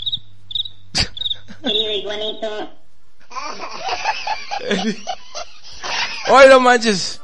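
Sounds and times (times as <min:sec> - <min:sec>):
cricket chirping: 0:00.0 - 0:02.5
speech: 0:01.6 - 0:02.8, 0:03.4 - 0:05.2, 0:06.3 - 0:07.2
laughter: 0:03.3 - 0:06.5.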